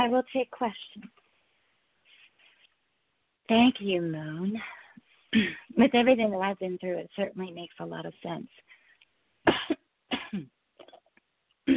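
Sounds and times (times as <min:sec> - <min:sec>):
speech: 0:00.0 - 0:01.1, 0:03.5 - 0:08.7, 0:09.4 - 0:10.6
person coughing with something stuck in the throat: 0:05.3 - 0:05.7, 0:09.5 - 0:11.7
throat clearing: 0:09.5 - 0:11.7.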